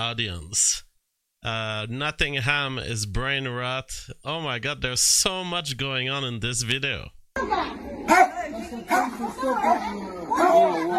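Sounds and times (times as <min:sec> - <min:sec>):
speech: 0:00.0 - 0:10.9
dog barking aggressively: 0:08.1 - 0:10.9.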